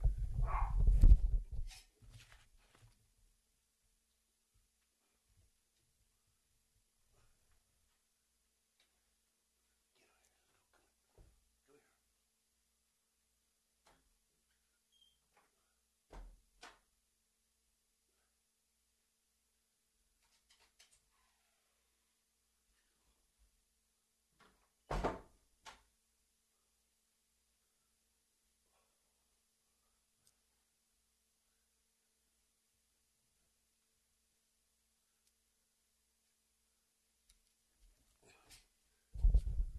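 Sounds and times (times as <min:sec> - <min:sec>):
shuffling: 0:00.1 - 0:03.0
dog barking behind a door: 0:00.4 - 0:00.9
door swinging shut with a solid thud: 0:24.9 - 0:25.3.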